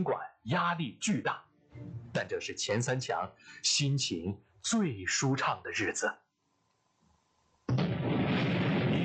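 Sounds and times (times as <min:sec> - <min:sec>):
speech: 0:00.0 - 0:06.2
atomic bomb explosion blast and deep roaring rumble: 0:07.7 - 0:09.0.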